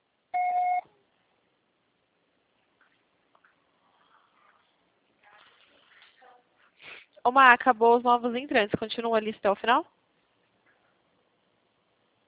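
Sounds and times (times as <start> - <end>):
single loud electronic voicemail beep: 0.4 - 0.9
faint rustling: 2.4 - 7.2
speech: 7.3 - 9.9.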